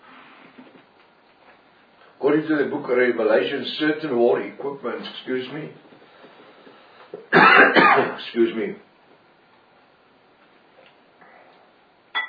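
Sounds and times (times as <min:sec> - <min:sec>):
speech: 0:02.2 - 0:05.9, 0:07.9 - 0:08.9
person coughing and clearing throat: 0:07.3 - 0:08.2.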